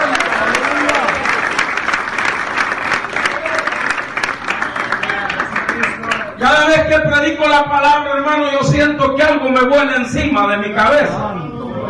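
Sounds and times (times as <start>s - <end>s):
congregation clapping: 0.0s - 6.8s
speech: 6.9s - 11.4s.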